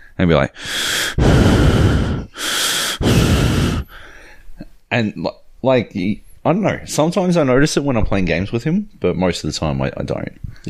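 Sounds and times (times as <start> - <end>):
speech: 0.2 - 1.8, 4.9 - 10.6
voice imitating heavy close-miked breathing into a microphone: 0.6 - 4.1.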